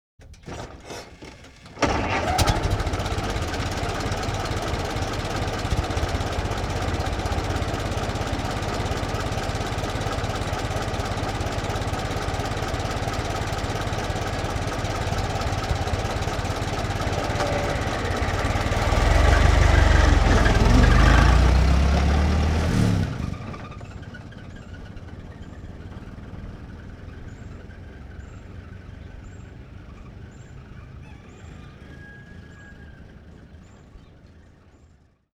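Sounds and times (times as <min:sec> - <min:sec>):
1924 Ford stake bed truck engine starting: 0:00.2 - 0:35.1.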